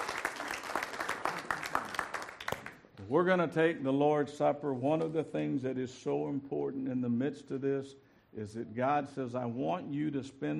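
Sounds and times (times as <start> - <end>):
church congregation clapping hands: 0.0 - 3.0
speech: 3.1 - 10.5.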